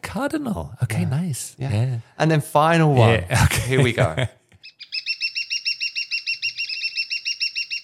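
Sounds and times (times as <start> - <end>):
speech: 0.2 - 4.4
laughter: 3.0 - 4.4
woodpecker calling: 4.6 - 7.8.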